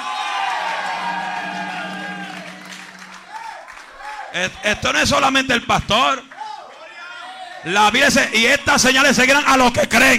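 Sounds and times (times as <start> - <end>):
audience shouting amen: 0.0 - 4.7
audience applause: 0.0 - 4.8, 6.2 - 6.7
speech: 4.4 - 6.3, 7.6 - 10.1.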